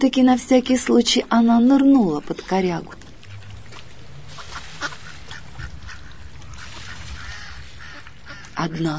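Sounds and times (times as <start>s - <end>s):
speech: 0.0s - 3.0s, 8.6s - 8.9s
flock of ducks quacking: 2.2s - 8.9s.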